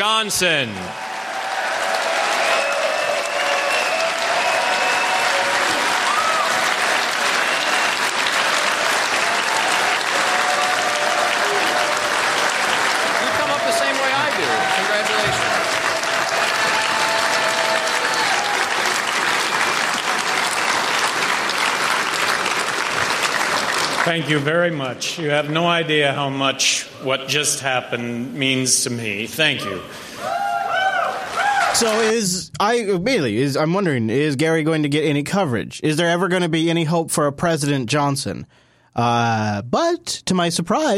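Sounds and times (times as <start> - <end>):
speech: 0.0 - 1.1, 24.1 - 30.1, 31.8 - 40.9
scattered cheers and shouts: 0.0 - 21.6, 29.6 - 32.2
large audience applauding: 0.0 - 25.8, 30.3 - 32.4.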